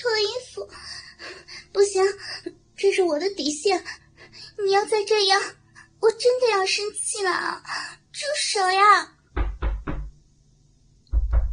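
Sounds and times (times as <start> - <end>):
speech: 3.0 - 4.0, 4.6 - 9.2
knocking on a door: 9.3 - 10.2, 11.1 - 11.5.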